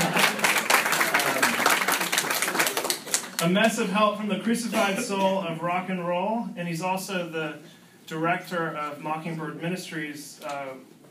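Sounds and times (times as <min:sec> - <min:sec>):
crowd applauding a guest author: 0:00.0 - 0:03.4
speech: 0:03.4 - 0:11.0.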